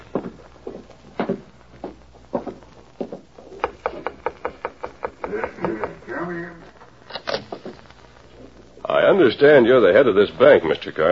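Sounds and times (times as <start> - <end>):
footsteps: 0.0 - 9.0
knocking on a wooden door: 3.6 - 6.0
speech: 9.2 - 11.1.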